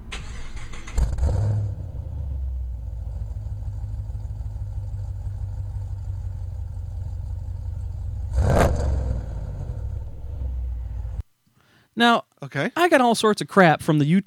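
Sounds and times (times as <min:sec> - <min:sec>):
car exhaust with long-tube headers idling: 0:00.0 - 0:11.2
speech: 0:12.0 - 0:14.2.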